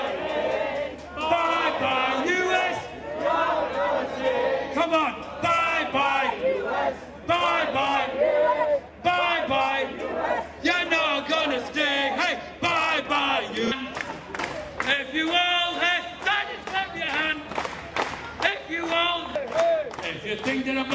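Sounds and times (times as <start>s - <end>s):
large crowd shouting a religious chant: 0.0s - 20.9s.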